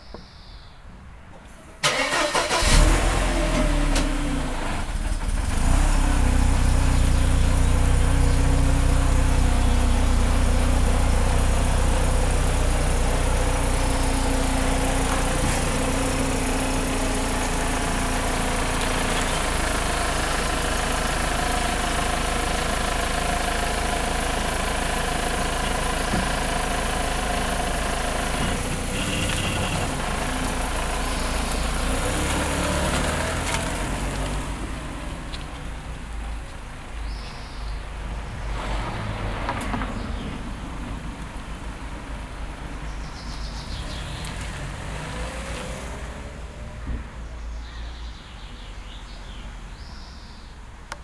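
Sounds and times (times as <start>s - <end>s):
old Mercedes C180 starting in a garage and driving onto a quiet road: 1.8s - 51.0s.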